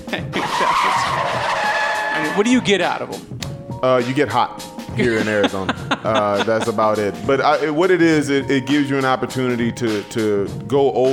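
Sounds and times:
speech: 0.1s - 1.6s, 2.2s - 11.1s
car tires screeching in a skid as the brakes lock: 0.2s - 3.2s
laughter: 5.0s - 7.2s.

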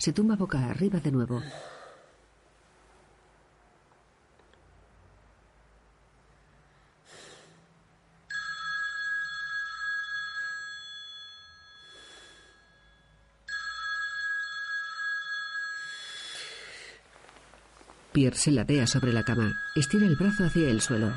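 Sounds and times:
speech: 0.0s - 1.8s, 18.2s - 21.1s
breathy sounds: 1.4s - 2.2s, 11.7s - 13.0s, 15.7s - 17.1s
mobile phone ringing on the floor beside a bed: 8.3s - 16.2s, 18.8s - 21.1s.

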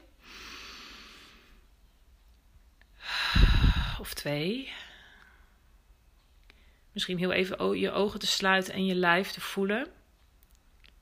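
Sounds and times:
deep breath in and out: 0.2s - 1.7s, 3.0s - 4.1s, 4.7s - 5.6s
speech: 4.2s - 4.8s, 7.0s - 10.0s.

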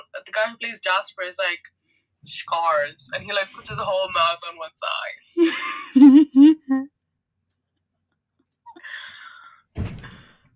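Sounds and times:
speech: 0.4s - 6.9s
house door slammed shut by a man: 9.8s - 10.2s.

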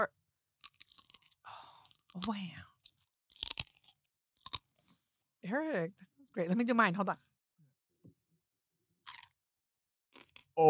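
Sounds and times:
crisp crunching of a snack being chewed: 0.6s - 5.1s, 9.0s - 9.4s, 10.1s - 10.5s
speech: 2.2s - 2.7s, 5.4s - 7.3s.

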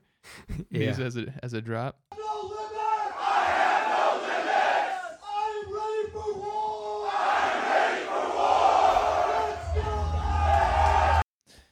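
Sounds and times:
speech: 0.6s - 2.1s
crowd of voices roaring a battle cry in unison: 2.2s - 11.2s.

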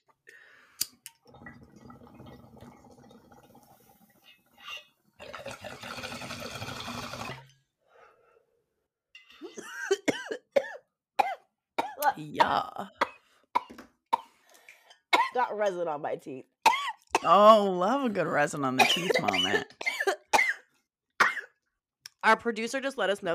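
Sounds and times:
gurgling water bubbling from a bong hit: 1.1s - 7.5s
harsh sputtering coughs: 9.4s - 12.0s, 15.1s - 15.4s, 18.8s - 21.6s
speech: 12.2s - 13.0s, 15.4s - 16.5s, 17.2s - 19.8s, 22.3s - 23.3s.

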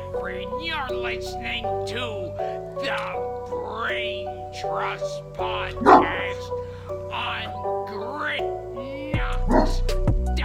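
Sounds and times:
speech: 0.3s - 10.1s
dog barking: 5.8s - 6.4s, 9.4s - 9.9s.

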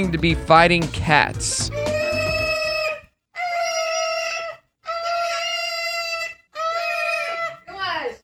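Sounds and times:
speech: 0.0s - 1.9s
man screeching with his pet parrot: 0.7s - 7.6s
pet parrot screeching: 1.5s - 8.1s.

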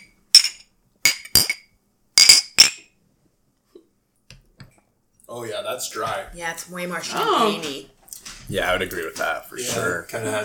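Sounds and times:
glass bottles clinking together in a toast: 0.0s - 2.9s
speech: 5.3s - 10.4s.

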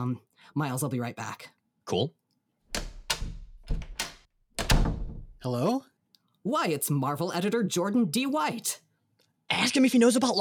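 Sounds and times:
speech: 0.0s - 2.2s, 5.4s - 8.8s, 9.5s - 10.3s
door handled and opened for a visitor: 2.7s - 5.4s.

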